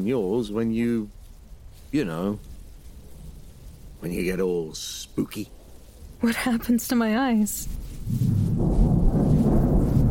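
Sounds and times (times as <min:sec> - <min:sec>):
speech: 0:00.0 - 0:01.2, 0:01.9 - 0:02.5, 0:04.0 - 0:05.6, 0:06.2 - 0:08.9
deep continuous rumble of thunder: 0:00.0 - 0:10.0.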